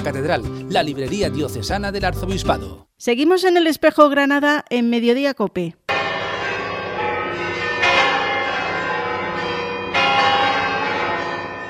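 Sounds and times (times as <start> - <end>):
speech: 0.0 - 5.8
church bells ringing: 5.9 - 11.6.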